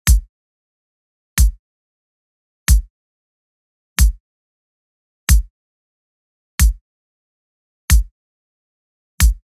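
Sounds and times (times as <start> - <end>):
Latin drum loop with kick: 0.1 - 0.3, 1.4 - 1.6, 2.7 - 2.9, 4.0 - 4.2, 6.6 - 6.8, 7.9 - 8.1, 9.2 - 9.4.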